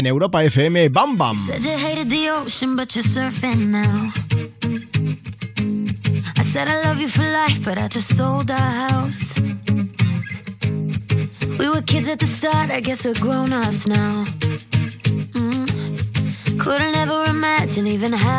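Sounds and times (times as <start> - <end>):
speech: 0.0 - 5.3, 6.4 - 9.6, 11.6 - 14.7, 16.6 - 18.3
pop song duet with English vocals over a full band: 1.1 - 5.1, 6.0 - 10.3, 11.1 - 18.3.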